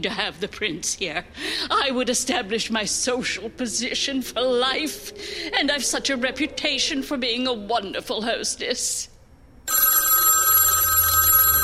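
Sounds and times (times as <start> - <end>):
speech: 0.0 - 9.1
telephone bell ringing: 9.7 - 11.6.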